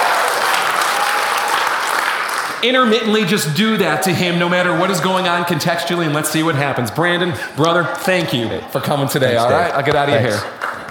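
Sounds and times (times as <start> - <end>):
crowd cheering and screaming: 0.0 - 2.1
audience clapping: 0.0 - 3.2, 9.6 - 10.9
speech: 2.6 - 10.6.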